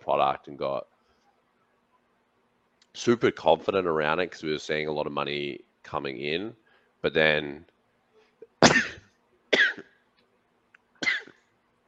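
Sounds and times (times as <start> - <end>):
speech: 0.1 - 0.9, 3.0 - 7.7
sharp explosive sneezes: 8.5 - 10.0.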